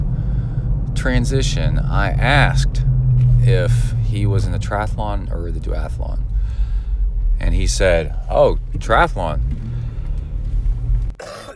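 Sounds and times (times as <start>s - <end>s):
low steady rumble: 0.0s - 11.4s
speech: 1.0s - 6.3s, 7.4s - 9.8s
single sharp cough: 11.2s - 11.5s.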